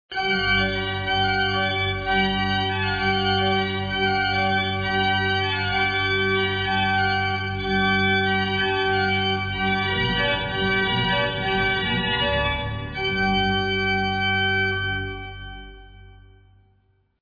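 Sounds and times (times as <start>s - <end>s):
pipe organ: 0.1s - 16.6s.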